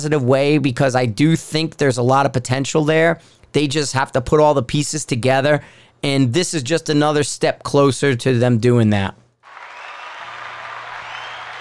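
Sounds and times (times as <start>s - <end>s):
speech: 0.0s - 9.2s
large crowd roaring and cheering: 9.4s - 11.5s.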